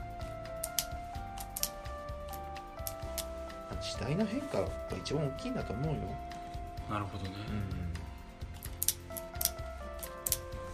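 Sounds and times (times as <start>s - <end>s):
small plastic pen cracking apart with sharp snaps and clicks: 0.6s - 3.3s, 8.6s - 10.5s
speech: 3.8s - 6.3s, 6.9s - 8.0s.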